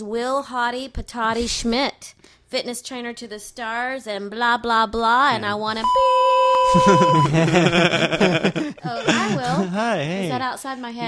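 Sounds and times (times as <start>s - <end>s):
speech: 0.0s - 11.0s
steady high electronic beep: 5.8s - 7.4s
laughter: 6.6s - 10.4s.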